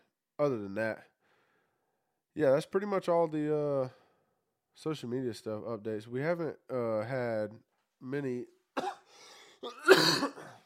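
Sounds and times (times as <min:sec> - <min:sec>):
speech: 0:00.4 - 0:01.1, 0:02.4 - 0:04.0, 0:04.8 - 0:09.0
person coughing in near-freezing weather in South Georgia: 0:08.8 - 0:10.6
breathy wheeze: 0:09.1 - 0:09.6.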